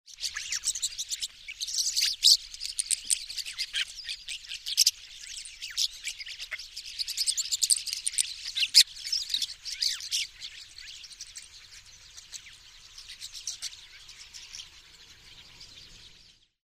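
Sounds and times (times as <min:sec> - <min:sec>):
starling singing: 0:00.1 - 0:16.1.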